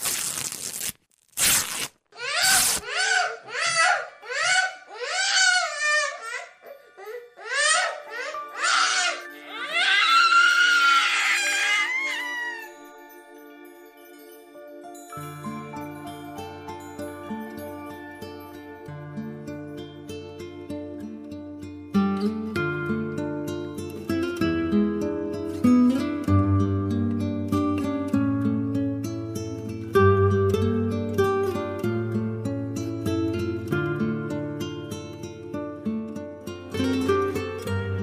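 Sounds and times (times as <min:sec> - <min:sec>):
child wailing and screaming: 0:02.2 - 0:06.5, 0:07.4 - 0:12.8
steady instrumental music: 0:06.2 - 0:38.0.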